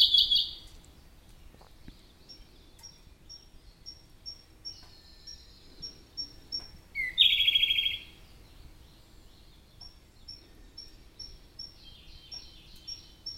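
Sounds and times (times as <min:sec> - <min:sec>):
Siberian blue robin song trill: 0:00.0 - 0:13.3.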